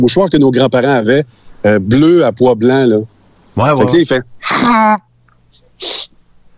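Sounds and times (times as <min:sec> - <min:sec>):
speech: 0:00.0 - 0:05.1, 0:05.8 - 0:06.1
person imitating a man sneezing into a handkerchief: 0:03.6 - 0:04.9, 0:05.8 - 0:06.1.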